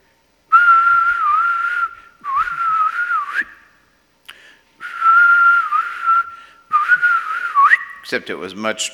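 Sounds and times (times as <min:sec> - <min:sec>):
person whistling imitating a mother's supper-time call: 0:00.5 - 0:03.7, 0:04.8 - 0:08.1
speech: 0:08.1 - 0:08.9.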